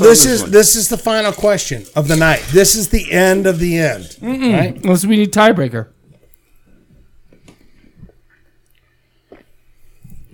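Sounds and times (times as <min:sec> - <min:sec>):
speech: 0:00.0 - 0:06.0
person chewing food: 0:06.2 - 0:10.3.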